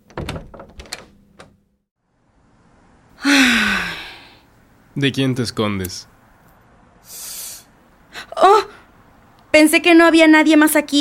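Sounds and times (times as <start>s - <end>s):
door rattling and clunking open and shutting: 0.0s - 1.6s
soft steady hiss: 2.1s - 10.9s
speech: 5.0s - 6.2s, 9.6s - 10.9s.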